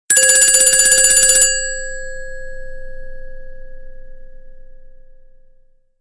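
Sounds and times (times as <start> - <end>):
SMS ringtone: 0.1 - 2.6.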